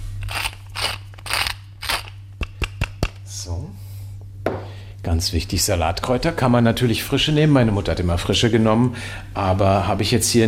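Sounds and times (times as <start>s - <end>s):
pepper mill grinding whisky pepper: 0.1s - 2.6s
speech: 3.4s - 3.8s, 5.0s - 10.4s.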